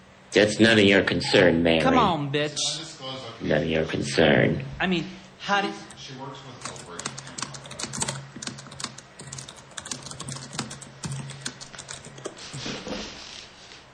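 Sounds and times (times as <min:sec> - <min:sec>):
speech: 0:00.4 - 0:06.9
typing on a computer keyboard: 0:06.6 - 0:12.3.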